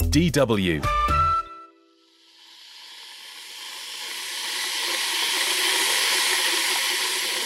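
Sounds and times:
speech: 0.1s - 1.1s
electric kettle hissing as water heats: 2.0s - 7.4s.

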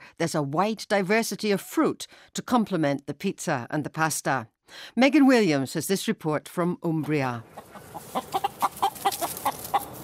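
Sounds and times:
speech: 0.2s - 8.3s
chicken clucking on a hilltop in Umbria: 7.4s - 10.0s.

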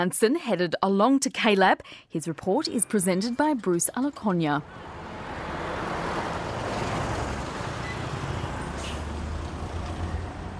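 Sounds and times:
speech: 0.0s - 5.0s
road noise inside a moving city bus: 2.8s - 10.5s
engine rumble inside a moving city bus in Kigali Rwanda: 3.1s - 10.5s
brief high hiss of city bus air brakes: 8.7s - 9.2s.

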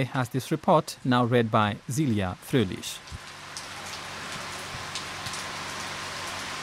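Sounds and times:
speech: 0.0s - 3.2s
heavy rain: 2.5s - 6.6s.

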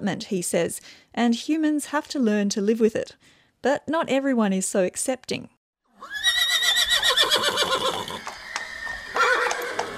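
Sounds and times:
speech: 0.0s - 6.2s
horse neighing at a stud farm: 5.9s - 9.9s.

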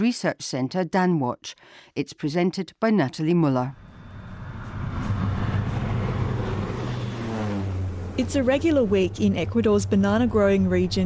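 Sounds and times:
speech: 0.0s - 3.9s, 8.2s - 11.0s
low-flying crop-spraying plane engine droning: 3.8s - 11.0s.

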